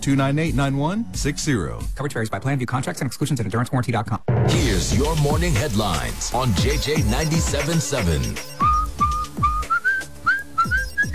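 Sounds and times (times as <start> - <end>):
thumping rhythmic musical backing with repeated low beats: 0.0 - 2.2, 4.2 - 11.1
speech: 0.0 - 8.5
person whistling a lively, bouncy tune: 8.3 - 11.1.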